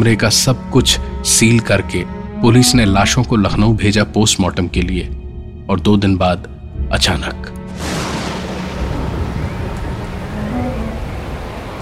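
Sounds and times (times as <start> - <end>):
speech: 0.0 - 8.0
heavy rain pouring down: 7.7 - 11.8.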